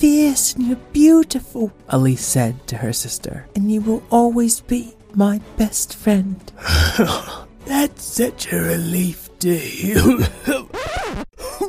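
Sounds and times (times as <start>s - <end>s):
speech: 0.0s - 11.2s
person imitating hacking and coughing something up: 6.6s - 7.4s, 9.9s - 10.7s, 11.4s - 11.6s.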